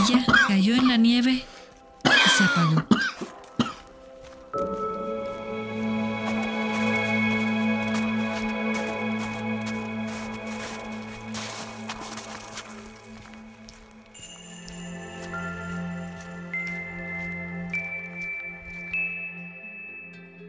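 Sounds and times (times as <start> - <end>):
harsh coughing: 0.0 - 0.9, 2.0 - 3.8
speech: 0.1 - 1.6, 2.4 - 3.1
steady sustained musical drone: 3.2 - 20.4.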